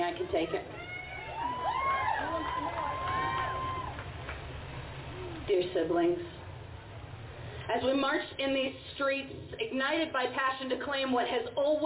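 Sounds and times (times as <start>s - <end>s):
speech: 0.1s - 0.8s, 2.4s - 3.7s, 5.5s - 6.4s, 7.7s - 11.8s
crowd cheering, whooping and shouting: 0.3s - 5.5s.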